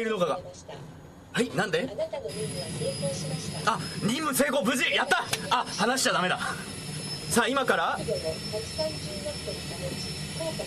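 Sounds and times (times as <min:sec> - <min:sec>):
speech: 0:00.0 - 0:10.6
video game airplane jet-engine drone while landing: 0:02.2 - 0:10.6.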